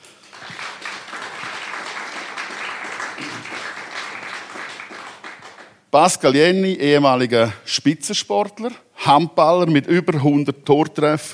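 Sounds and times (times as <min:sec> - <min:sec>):
audience applause welcoming guests onto a stage: 0:00.0 - 0:05.8
speech: 0:06.0 - 0:11.3.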